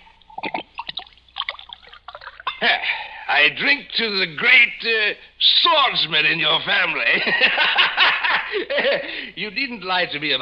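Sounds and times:
wine pouring into a glass: 0:00.2 - 0:02.6
glass clinks: 0:02.2 - 0:02.8
laughter: 0:02.6 - 0:03.0, 0:07.1 - 0:09.3
speech: 0:02.6 - 0:10.4.

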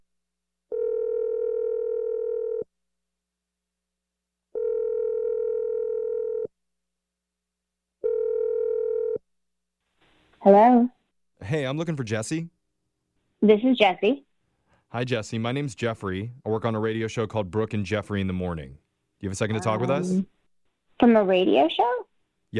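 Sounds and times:
telephone ringback tones: 0:00.7 - 0:02.6, 0:04.5 - 0:06.5, 0:08.0 - 0:09.2
speech: 0:10.5 - 0:12.6, 0:13.4 - 0:14.3, 0:14.9 - 0:20.4, 0:21.0 - 0:22.5.

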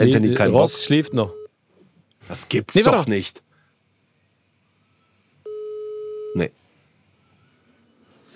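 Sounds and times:
speech: 0:00.0 - 0:01.4, 0:02.2 - 0:03.4, 0:06.4 - 0:06.6
telephone call tone for unreachable number: 0:00.4 - 0:01.5, 0:05.5 - 0:06.4.

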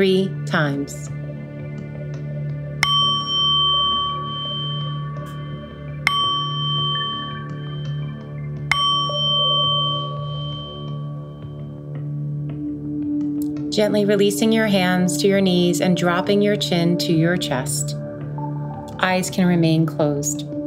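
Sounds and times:
speech: 0:00.0 - 0:01.2, 0:13.8 - 0:18.0, 0:19.0 - 0:20.5
soft sustained drone: 0:00.0 - 0:20.6
meditation bell chimes: 0:02.8 - 0:13.2.

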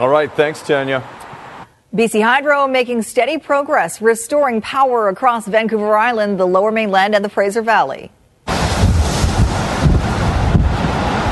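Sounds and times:
speech: 0:00.0 - 0:01.3, 0:01.9 - 0:08.2
strong storm wind buffeting the microphone: 0:08.5 - 0:11.2
waves crashing and churning: 0:08.5 - 0:11.2.

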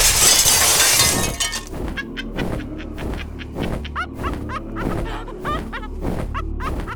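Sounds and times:
window glass shattering: 0:00.0 - 0:01.8
laughter: 0:01.9 - 0:06.9.

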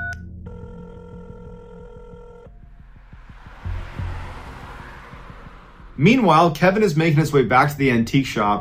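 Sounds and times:
telephone ringing with electronic trill: 0:00.0 - 0:02.5
steady low rumble: 0:02.4 - 0:07.2
speech: 0:06.0 - 0:08.5.

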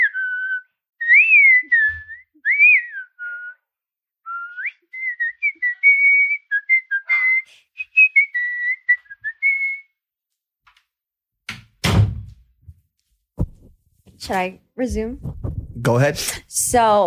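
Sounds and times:
person whistling a wavering tune: 0:00.0 - 0:03.7, 0:04.3 - 0:10.0
heavy door thud: 0:11.8 - 0:12.4, 0:13.4 - 0:13.8
speech: 0:14.3 - 0:17.0.

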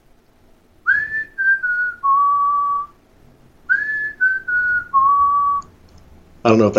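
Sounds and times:
person whistling a short descending melody: 0:00.9 - 0:03.0, 0:03.7 - 0:05.7
speech: 0:06.5 - 0:06.7.

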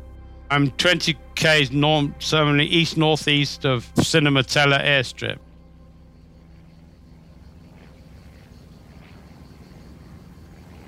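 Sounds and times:
low aircraft engine drone: 0:00.0 - 0:10.8
speech: 0:00.5 - 0:05.4.

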